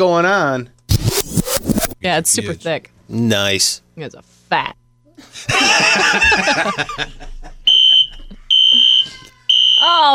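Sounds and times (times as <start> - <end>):
speech: 0.0 - 7.3, 9.8 - 10.1
people laughing: 5.2 - 9.4
building fire alarm sounding piercing electronic tones: 7.7 - 10.1.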